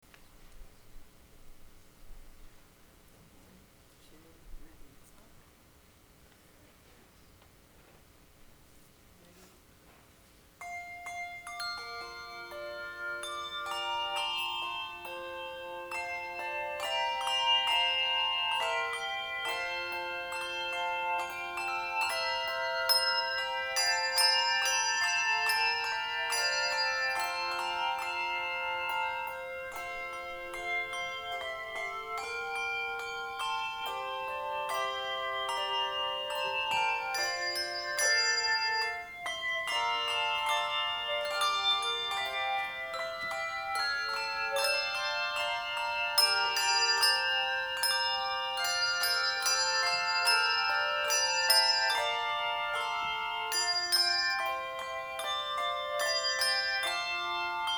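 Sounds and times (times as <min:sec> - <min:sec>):
handbells ringing: 0:10.6 - 0:57.7.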